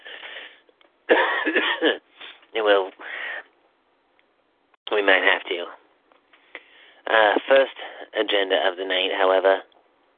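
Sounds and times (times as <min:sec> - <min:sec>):
person coughing: 0:01.1 - 0:02.0
speech: 0:01.8 - 0:03.1, 0:05.0 - 0:05.8, 0:07.1 - 0:09.7.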